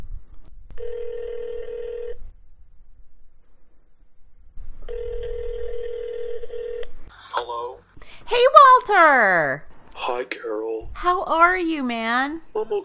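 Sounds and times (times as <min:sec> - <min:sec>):
low hum: 0:00.0 - 0:12.8
tinny ringback tones from an outgoing phone call: 0:00.8 - 0:02.2, 0:04.9 - 0:06.8
speech: 0:08.3 - 0:12.8.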